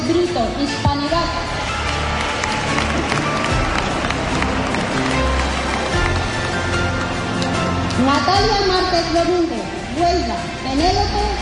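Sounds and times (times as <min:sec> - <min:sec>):
speech: 0:00.1 - 0:01.6, 0:08.0 - 0:11.4
crowd cheering: 0:01.4 - 0:07.9
large audience applause: 0:01.4 - 0:08.0.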